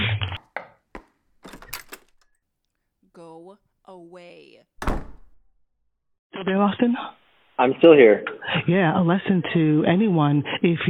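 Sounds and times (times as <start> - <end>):
front door being unlatched and opened: 1.0 - 2.4, 4.8 - 5.4
door handle and frame clattering and rattling: 1.3 - 2.3
speech: 6.4 - 10.8.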